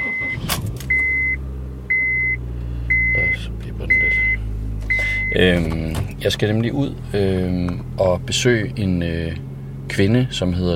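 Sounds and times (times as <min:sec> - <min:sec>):
car warning chime beeping: 0:00.0 - 0:05.7
old petrol Honda car engine starting and idling: 0:00.0 - 0:10.7
speech: 0:05.3 - 0:10.7.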